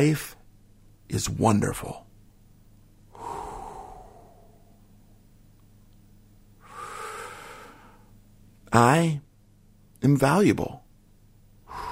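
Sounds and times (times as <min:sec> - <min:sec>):
speech: 0:00.0 - 0:00.3, 0:01.1 - 0:02.0, 0:08.7 - 0:09.3, 0:10.0 - 0:10.8
faint steady low hum: 0:00.0 - 0:11.8
person breathing in deeply: 0:03.1 - 0:04.8, 0:06.6 - 0:08.2, 0:11.6 - 0:11.8.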